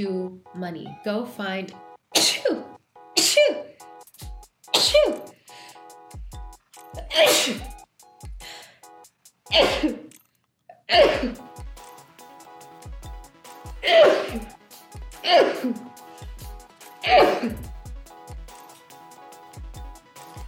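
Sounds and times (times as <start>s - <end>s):
speech: 0.0s - 3.8s, 4.8s - 5.3s, 7.1s - 7.7s, 9.5s - 10.0s, 10.9s - 11.4s, 13.8s - 14.5s, 15.2s - 15.9s, 17.1s - 17.6s
person sneezing: 2.2s - 3.7s, 4.7s - 5.4s, 7.0s - 7.8s, 9.5s - 10.1s, 10.9s - 11.4s, 13.8s - 14.6s, 15.2s - 15.9s, 17.0s - 17.7s.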